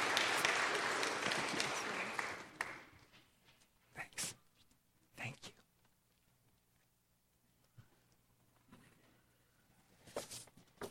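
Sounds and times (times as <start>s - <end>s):
audience applause: 0.0s - 3.0s.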